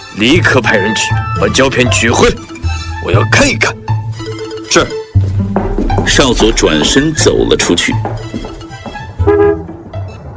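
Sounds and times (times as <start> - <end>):
speech: 0.2 - 3.9, 4.7 - 8.2
car horn honking: 9.2 - 9.7.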